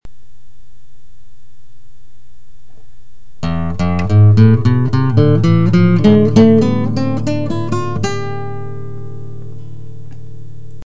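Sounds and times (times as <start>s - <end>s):
Spanish scale on classical guitar: 3.4s - 10.8s.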